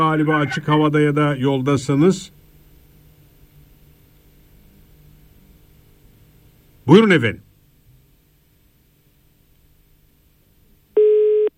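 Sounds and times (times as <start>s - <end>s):
speech: 0.0s - 2.4s, 6.9s - 7.5s
telephone busy tone beep after a caller's line dropped during a phone-in: 11.0s - 11.5s.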